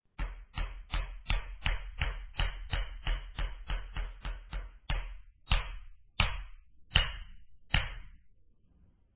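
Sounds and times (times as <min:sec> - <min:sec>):
anvil: 0:00.2 - 0:08.2.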